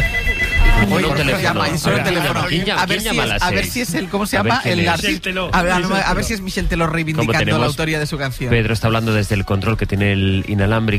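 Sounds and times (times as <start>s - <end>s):
telephone ringing with steady electronic tone: 0.0s - 3.4s
speech: 0.9s - 10.9s.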